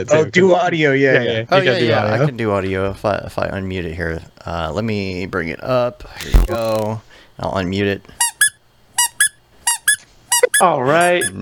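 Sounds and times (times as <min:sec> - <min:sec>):
speech: 0:00.0 - 0:08.2, 0:10.5 - 0:11.4
dog's squeaky toy squeaking: 0:08.2 - 0:11.4.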